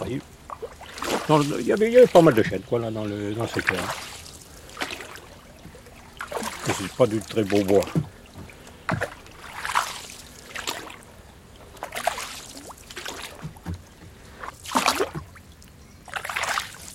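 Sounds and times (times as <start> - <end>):
canoe paddle pushing through water: 0.0 - 15.5, 16.1 - 16.9
speech: 0.1 - 0.3, 1.3 - 4.1, 6.8 - 8.1.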